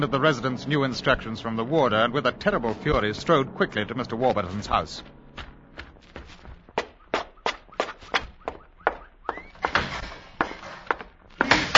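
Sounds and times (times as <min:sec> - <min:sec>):
speech: 0:00.0 - 0:05.5
quick steady footsteps: 0:02.4 - 0:11.7.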